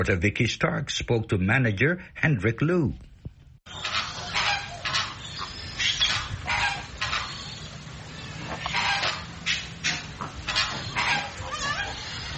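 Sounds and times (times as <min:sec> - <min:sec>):
speech: 0:00.0 - 0:03.1
flock of flamingos honking in a walk-through wildlife sanctuary enclosure: 0:03.7 - 0:12.3.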